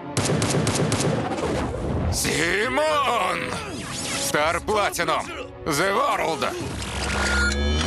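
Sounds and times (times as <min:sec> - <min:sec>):
pistol gunshots: 0:00.2 - 0:01.4
speech: 0:00.3 - 0:07.7.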